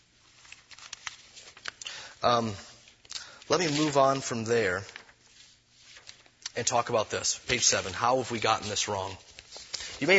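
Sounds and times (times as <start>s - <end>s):
paper notes being shuffled: 0.2s - 1.8s, 2.8s - 10.1s
speech: 2.2s - 2.7s, 3.5s - 5.0s, 6.6s - 9.3s, 10.0s - 10.1s.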